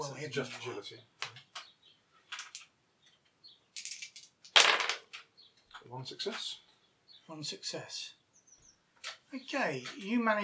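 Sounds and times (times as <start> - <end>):
speech: 0.0 - 1.2, 5.9 - 6.6, 7.3 - 8.2, 9.0 - 10.4
dice clattering across a hard tabletop: 2.3 - 2.7, 3.8 - 5.3.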